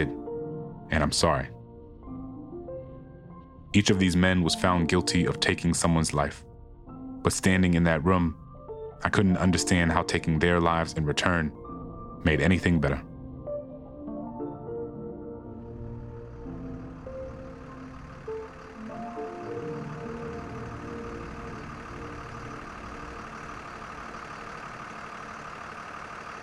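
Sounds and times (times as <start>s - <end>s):
large bus engine idling and revving as the bus pulls away: 0.0s - 1.9s, 3.3s - 6.7s, 7.3s - 8.4s, 9.0s - 13.0s, 14.6s - 26.4s
speech: 0.9s - 1.6s, 3.7s - 6.5s, 7.2s - 8.4s, 9.0s - 11.6s, 12.2s - 13.1s.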